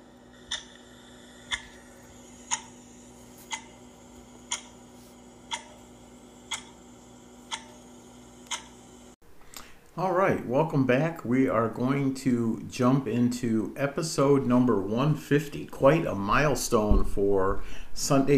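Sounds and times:
faint steady hum: 0.0 - 18.3
clock ticking: 0.3 - 8.8
speech: 10.0 - 18.3.

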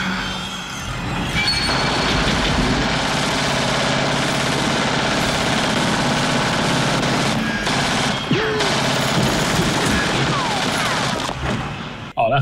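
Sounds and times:
thick continuous film soundtrack: 0.0 - 12.4
Uzi submachine gun automatic fire in a film scene: 1.7 - 11.5.

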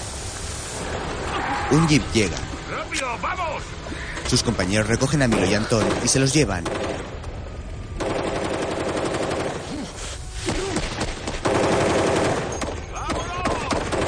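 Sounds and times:
speech: 1.7 - 7.1
sustained automatic gunfire in a thriller film shootout: 5.3 - 7.1, 8.0 - 9.7, 10.8 - 14.0.

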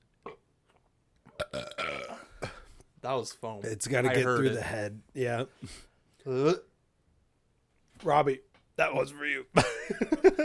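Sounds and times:
loud drawn-out burp: 1.3 - 2.7
speech: 3.0 - 6.7, 8.0 - 10.4.

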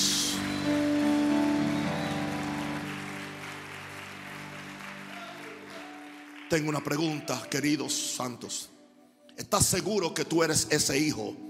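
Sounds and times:
audience applauding: 0.0 - 7.8
speech: 6.5 - 8.8, 9.4 - 11.4.

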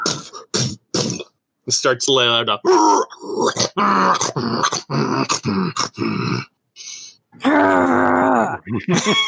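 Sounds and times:
speech: 0.1 - 0.4, 1.7 - 9.2
person growling and groaning imitating a dragon: 2.7 - 6.5, 7.4 - 8.8.

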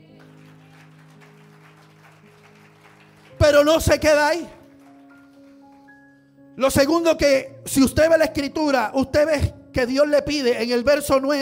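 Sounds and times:
congregation applauding: 0.0 - 6.3
speech: 3.4 - 4.6, 6.6 - 11.4.

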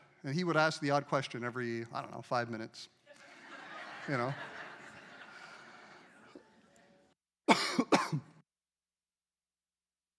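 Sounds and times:
speech: 0.2 - 3.0, 4.0 - 4.6
laughter: 3.1 - 7.1
two sharp loud coughs: 7.5 - 8.4.

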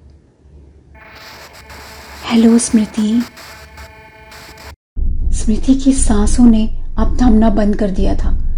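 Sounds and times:
buzzing electronic phone line hum with static hiss: 1.0 - 4.8
speech: 2.3 - 3.4, 5.5 - 8.4.

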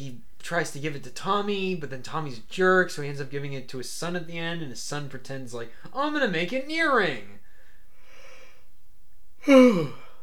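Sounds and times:
speech: 0.1 - 7.4, 9.4 - 10.0
person yawning: 9.4 - 10.2.

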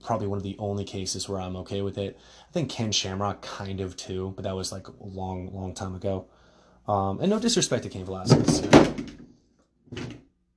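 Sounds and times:
speech: 0.1 - 9.2, 9.9 - 10.2
objects knocked over on a desk: 8.2 - 9.3, 9.9 - 10.2.

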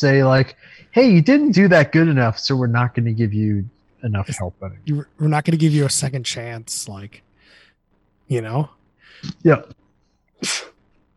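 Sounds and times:
speech: 0.0 - 7.3, 8.3 - 9.8, 10.4 - 10.7
person sneezing: 10.4 - 10.8.

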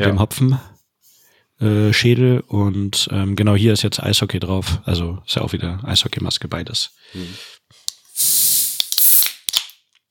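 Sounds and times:
speech: 0.0 - 0.7, 1.6 - 7.6
beer can opening clicks: 7.9 - 9.9
gas hissing from an opened beer can: 8.1 - 9.6.

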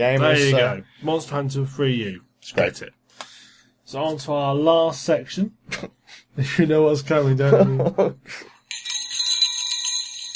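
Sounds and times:
speech: 0.0 - 3.3, 3.9 - 8.5
bell ringing sound effect for a news segment: 8.7 - 10.3.

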